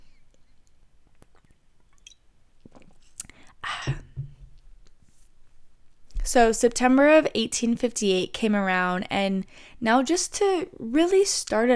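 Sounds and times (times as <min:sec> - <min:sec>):
person sipping a beer: 0:01.1 - 0:04.5
speech: 0:06.3 - 0:11.7.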